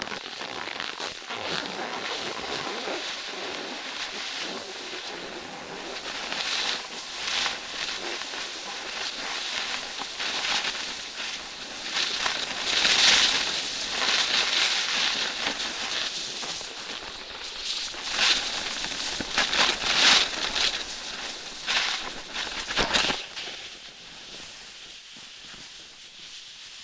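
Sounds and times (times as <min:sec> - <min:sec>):
footsteps on fresh snow: 0:00.2 - 0:26.8.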